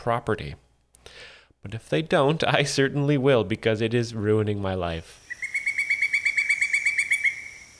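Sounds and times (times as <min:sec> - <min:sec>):
speech: 0:00.0 - 0:05.2
pileated woodpecker calling with loud ringing notes: 0:05.2 - 0:07.7.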